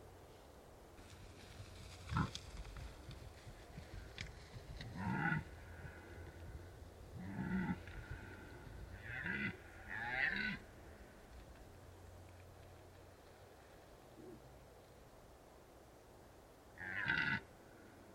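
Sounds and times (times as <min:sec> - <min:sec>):
steady low rumble of wind: 0:00.0 - 0:18.1
red deer stags bellowing and grunting during the rut in the Carpathian Mountains: 0:02.0 - 0:02.5, 0:04.8 - 0:11.2, 0:16.8 - 0:17.8.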